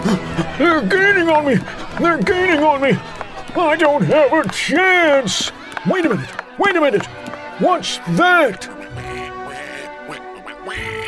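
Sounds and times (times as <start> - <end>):
laughter: 0.0 - 11.0
speech: 0.5 - 8.8
giant purple polka-dotted duck quacking: 8.7 - 11.0.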